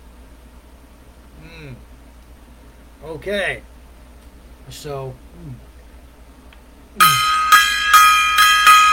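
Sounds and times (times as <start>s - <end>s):
speech: 1.4s - 1.9s, 3.0s - 3.7s, 4.7s - 5.7s
small gong being struck: 7.0s - 8.9s.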